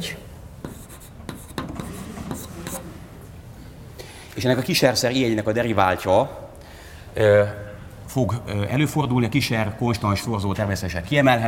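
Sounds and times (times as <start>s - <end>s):
steady low hum: 0.0s - 11.4s
writing on a board during a lecture: 0.6s - 3.0s
speech: 4.4s - 6.4s, 7.2s - 11.4s.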